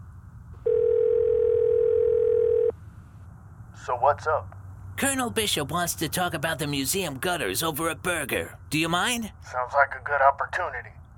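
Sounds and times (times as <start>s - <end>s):
telephone dial tone while a call is placed: 0.6s - 2.7s
speech: 3.9s - 11.0s.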